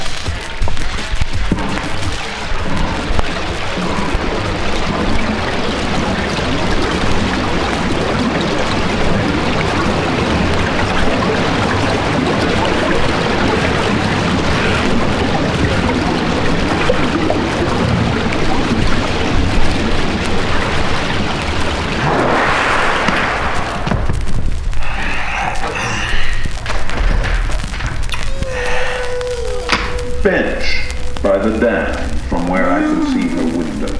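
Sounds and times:
bubbles of a whale's bubble net rising: 0.0 - 33.9
loud steady underwater churning: 0.0 - 33.9.

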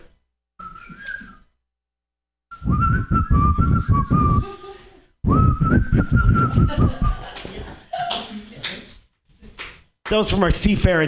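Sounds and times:
person whistling: 0.6 - 1.6, 2.5 - 4.6, 5.2 - 7.2
speech: 3.9 - 4.8, 6.0 - 7.2, 10.1 - 11.0
laughter: 4.3 - 5.1, 6.4 - 8.9.

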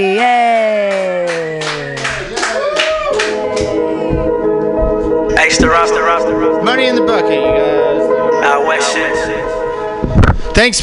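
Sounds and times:
speech: 0.0 - 0.5, 10.6 - 10.8
audience at a comedy show applauding: 0.9 - 4.0
short descending musical tone: 2.6 - 10.8.

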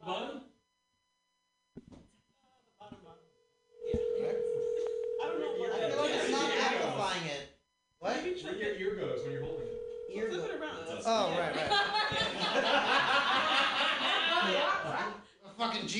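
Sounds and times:
steady telephone dialing tone: 3.4 - 6.9, 8.9 - 10.8
speech: 8.4 - 15.9
laughter: 11.5 - 15.2.

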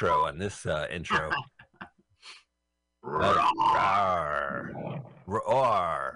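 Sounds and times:
speech: 0.0 - 1.5, 3.0 - 6.1
lion roaring: 3.1 - 5.7.

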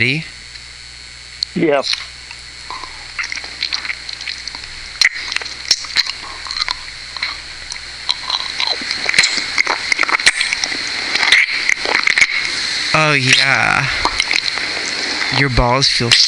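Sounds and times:
speech: 0.0 - 0.4, 1.5 - 2.1, 13.1 - 14.1, 15.3 - 16.2
wet mouth sucking and slurping with smacking clicks: 2.7 - 15.5.

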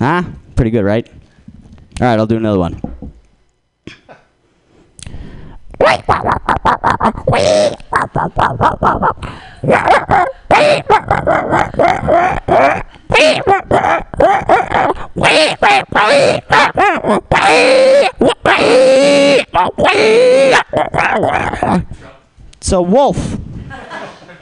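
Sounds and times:
speech: 0.0 - 1.2, 2.0 - 2.9, 5.8 - 24.0
man's voice imitating a wolf with yips and howl: 5.8 - 22.0
laughter: 23.7 - 24.4.

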